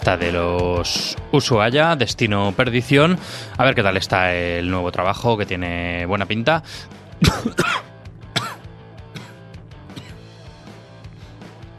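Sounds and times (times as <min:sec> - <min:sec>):
speech: 0:00.0 - 0:07.9
harsh coughing fit with throat-clearing hacks: 0:07.2 - 0:10.2.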